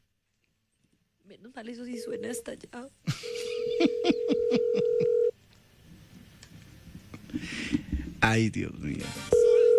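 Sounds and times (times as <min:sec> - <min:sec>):
speech: 0:01.3 - 0:05.2, 0:08.3 - 0:09.4
telephone ringback tone of an unanswered call: 0:02.0 - 0:02.4, 0:03.2 - 0:05.3, 0:09.3 - 0:09.7.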